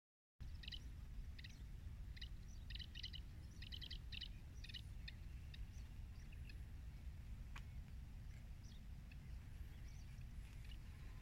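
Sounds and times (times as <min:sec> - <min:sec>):
Zitting cisticola calling with quick metallic clicks: 0:00.4 - 0:11.2
constant low-pitched environmental hum: 0:00.4 - 0:11.2.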